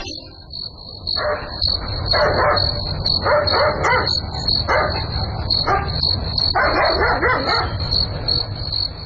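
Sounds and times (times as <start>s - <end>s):
high-pitched chorus of crickets or insects trilling: 0.1s - 9.0s
dog barking in the middle of the night: 1.2s - 7.9s.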